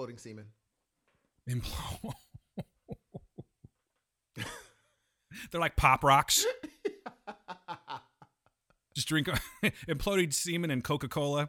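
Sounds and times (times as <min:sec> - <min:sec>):
speech: 0:00.0 - 0:00.6, 0:01.4 - 0:02.7, 0:05.4 - 0:06.7, 0:09.0 - 0:11.4
person coughing and clearing something stuck in the throat: 0:01.5 - 0:03.3
laughter: 0:06.3 - 0:08.6.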